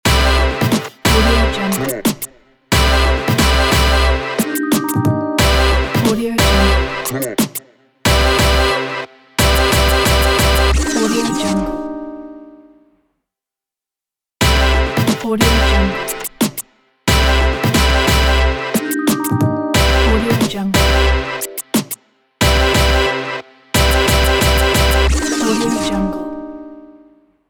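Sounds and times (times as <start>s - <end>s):
hip hop logo jingle: 0.0s - 12.6s, 14.4s - 16.5s, 17.1s - 26.9s.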